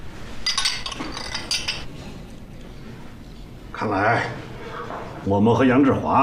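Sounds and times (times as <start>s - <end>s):
glasses clinking in a toast: 0.4s - 1.9s
speech: 3.8s - 4.5s, 5.2s - 6.2s.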